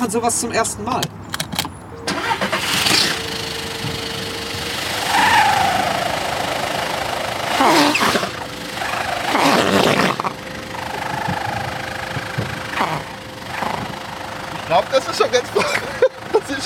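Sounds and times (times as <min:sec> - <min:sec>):
speech: 0:00.0 - 0:01.5
car engine idling through exhaust during an exhaust sound test: 0:00.0 - 0:16.6
laughter: 0:14.7 - 0:16.6.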